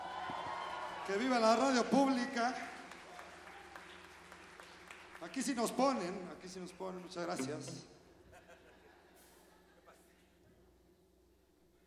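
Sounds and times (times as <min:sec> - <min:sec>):
audience clapping: 0:00.0 - 0:07.2
speech: 0:01.1 - 0:02.7, 0:05.2 - 0:08.0
laughter: 0:08.2 - 0:10.3.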